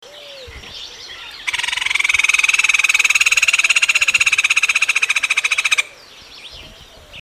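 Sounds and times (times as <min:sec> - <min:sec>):
Hoffmann's woodpecker: 0:01.4 - 0:05.9.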